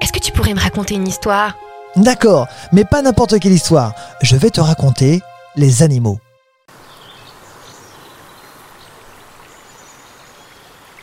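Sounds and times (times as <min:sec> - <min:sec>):
speech: 0:00.2 - 0:06.3
flowing stream water babbling: 0:06.7 - 0:11.0.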